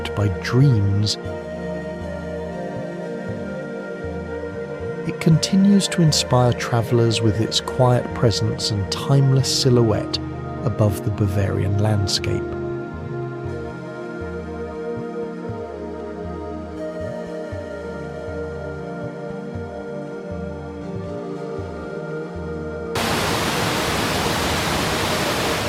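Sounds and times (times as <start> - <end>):
sustained droning music: 0.0 - 25.6
speech: 0.2 - 1.6, 5.2 - 12.5
river cascading over volcanic rock in a wide waterfall: 23.0 - 25.6.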